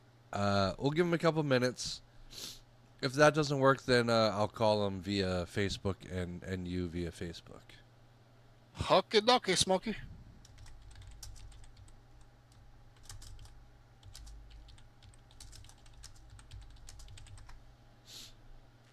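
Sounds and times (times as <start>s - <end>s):
low hum: 0.0s - 18.9s
speech: 0.3s - 7.8s, 8.8s - 10.1s
typing on a computer keyboard: 10.4s - 17.6s.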